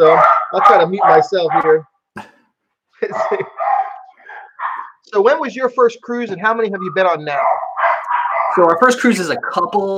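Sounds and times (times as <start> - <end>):
several dogs barking and yipping: 0.0 - 1.8, 3.0 - 5.1, 6.6 - 9.7
speech: 0.0 - 2.3, 3.0 - 3.6, 5.1 - 7.6, 8.6 - 9.9.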